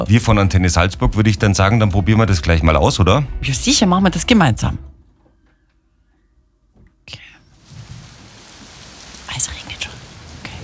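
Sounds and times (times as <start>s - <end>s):
speech: 0.0s - 4.9s
soft steady rain pattering with a fine crackling texture: 7.2s - 10.6s.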